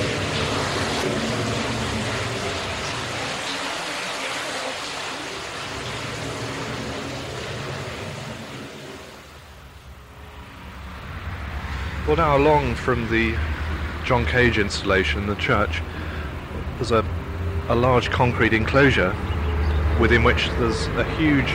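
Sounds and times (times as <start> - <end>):
water cascading down into a pool: 0.0 - 10.0
speech: 12.1 - 13.5, 14.1 - 16.0, 16.8 - 19.3, 20.0 - 21.5.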